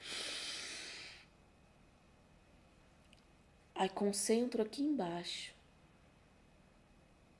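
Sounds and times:
deep forceful inhalation: 0.0s - 1.3s
speech: 3.8s - 5.6s.

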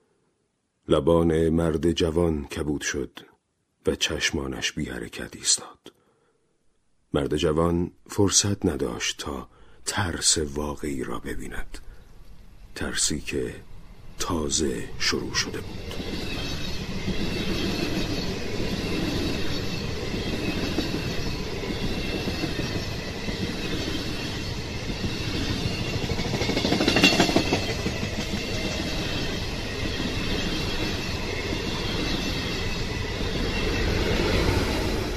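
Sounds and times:
speech: 0.9s - 6.0s, 7.1s - 11.9s, 12.8s - 16.4s
train rolling along the rails: 12.3s - 35.1s.

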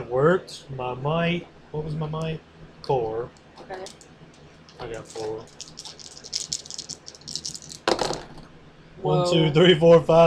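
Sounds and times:
speech: 0.1s - 4.1s, 4.8s - 5.9s, 9.0s - 10.2s
dice rattling in a cupped hand: 4.9s - 8.3s.

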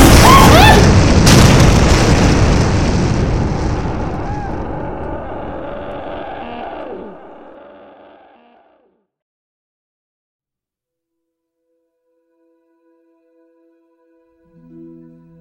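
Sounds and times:
explosion boom sound effect: 0.0s - 6.2s.

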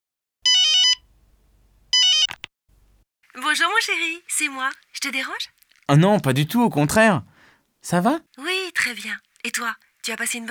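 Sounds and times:
telephone ringing with electronic warbling tones: 0.4s - 1.0s, 2.0s - 2.5s
telephone receiver click: 2.0s - 2.5s
speech: 3.4s - 10.4s.

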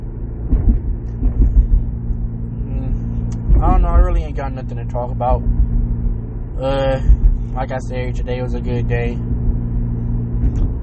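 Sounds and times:
car engine rumbling while being driven: 0.0s - 10.8s
speech: 4.4s - 5.6s, 6.6s - 9.3s.

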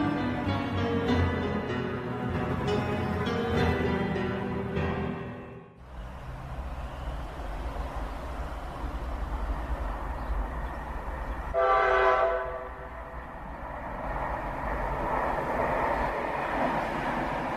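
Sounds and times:
faint ambient railway station noise: 0.0s - 17.5s
train idling at a station: 0.0s - 17.5s
train horn at a railway station: 11.5s - 12.9s.

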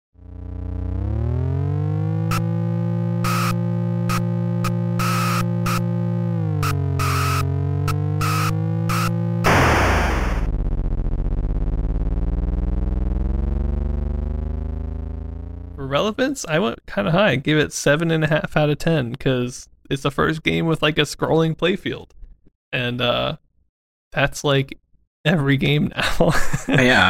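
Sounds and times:
arcade driving game synthesized car engine drone: 0.2s - 16.0s
sharp electronic bursts: 2.2s - 13.2s
electronic noise hiss: 6.6s - 15.7s
speech: 15.9s - 23.4s, 24.1s - 27.0s
laughter: 26.0s - 27.0s.

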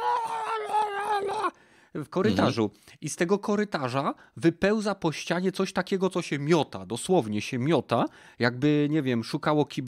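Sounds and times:
voice imitating a creature's scream from a video game: 0.0s - 1.6s
speech: 1.5s - 9.8s.

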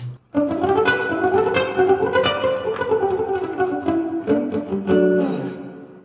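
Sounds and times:
electric guitar playing sustained ringing notes with reverb effect: 0.0s - 6.0s.

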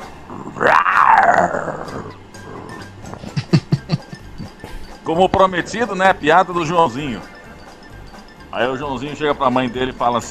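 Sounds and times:
lion roaring: 0.2s - 3.1s
speech: 1.4s - 2.2s, 5.1s - 7.3s, 8.5s - 10.2s
lion grunting huffs: 1.4s - 3.4s
laughter: 3.1s - 4.8s.

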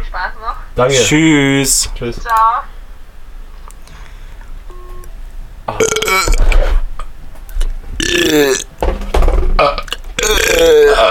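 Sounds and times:
speech: 0.2s - 2.7s, 8.3s - 8.7s
loud drawn-out burps: 5.7s - 6.8s, 8.0s - 8.7s, 9.6s - 11.0s.

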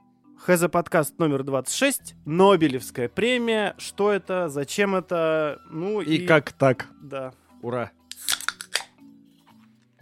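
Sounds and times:
speech: 0.5s - 8.4s
can being opened: 8.1s - 9.0s.

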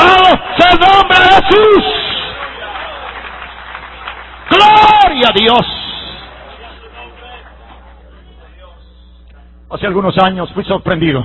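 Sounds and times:
audience clapping in praise of God: 0.0s - 8.7s
speech: 5.2s - 5.8s, 9.7s - 11.2s.

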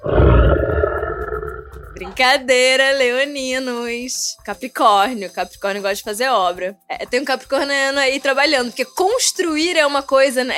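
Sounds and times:
lion roaring: 0.0s - 2.2s
speech: 2.0s - 10.5s.

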